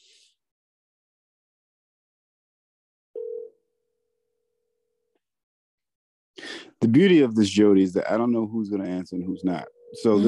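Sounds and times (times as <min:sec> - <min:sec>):
ringing tone on an outgoing phone call: 0:03.2 - 0:03.7, 0:09.4 - 0:10.2
speech: 0:06.8 - 0:10.2.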